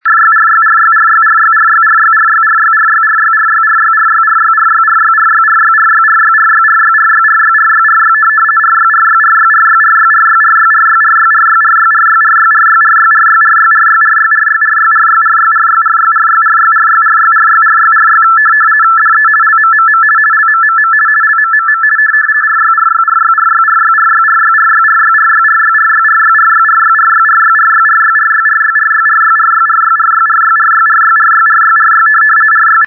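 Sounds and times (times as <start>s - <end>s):
aeronautical RTTY 50 baud signal from Luqa: 0.0s - 32.8s.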